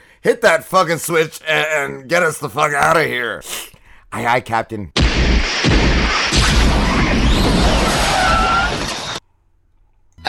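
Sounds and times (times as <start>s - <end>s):
speech: 0.2s - 5.4s
aircraft crashing into a tower: 5.0s - 9.2s.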